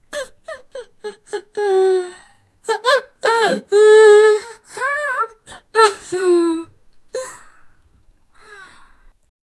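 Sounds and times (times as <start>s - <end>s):
person crying tearfully in a funny way: 0.2s - 7.5s.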